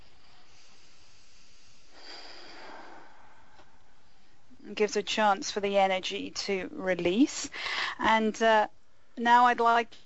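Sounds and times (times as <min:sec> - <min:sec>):
slow comfortable breath during a guided relaxation exercise: 0:00.0 - 0:04.6, 0:07.5 - 0:08.1
speech: 0:04.8 - 0:10.0.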